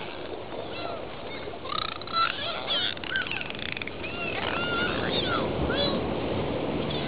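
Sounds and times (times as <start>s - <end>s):
dolphins whistling: 0.0s - 6.0s.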